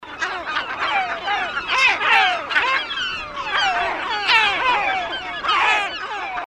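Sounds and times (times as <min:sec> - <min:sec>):
Great Black-backed Gull Larus marinus short calls: 0:00.0 - 0:06.4.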